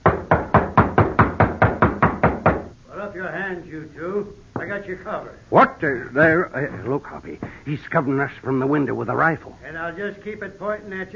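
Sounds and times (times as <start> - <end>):
loud knocks on a wooden door: 0.0 - 2.7
speech: 3.2 - 11.1.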